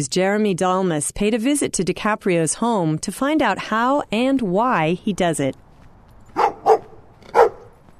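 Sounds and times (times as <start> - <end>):
speech: 0.0 - 5.6
guard dogs barking at a house in West Oakland: 6.3 - 7.8.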